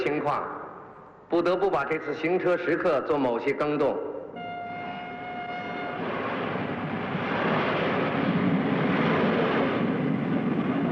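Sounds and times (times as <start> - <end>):
speech: 0.1 - 0.6, 1.3 - 4.1
moving passenger train rumbling: 4.3 - 10.8.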